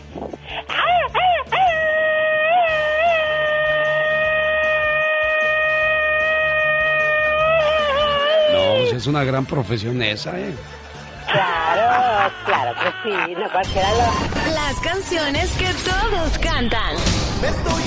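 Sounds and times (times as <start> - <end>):
person yelling in rapid staccato bursts: 0.7 - 9.0
long loud sustained shout: 1.6 - 8.9
speech: 9.0 - 11.4, 12.4 - 17.8
laughter: 10.6 - 14.4.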